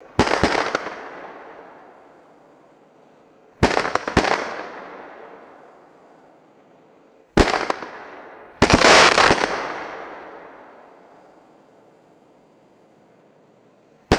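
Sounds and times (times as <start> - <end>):
sharp reverberant firecracker pops: 0.0 - 2.4, 3.6 - 6.4, 7.3 - 11.5.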